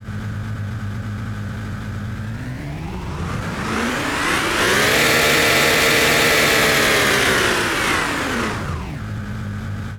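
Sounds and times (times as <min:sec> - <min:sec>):
off-road vehicle engine: 0:00.0 - 0:09.9.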